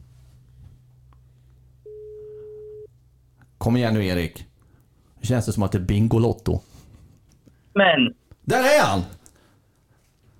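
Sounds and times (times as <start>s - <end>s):
ringback tone of an outgoing phone call: 1.8s - 2.9s
speech: 3.6s - 4.5s, 5.2s - 6.7s, 7.8s - 9.2s.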